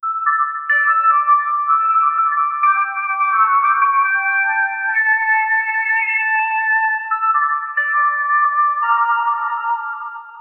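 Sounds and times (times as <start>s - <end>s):
sci-fi melody: 0.0s - 6.2s, 6.9s - 10.4s.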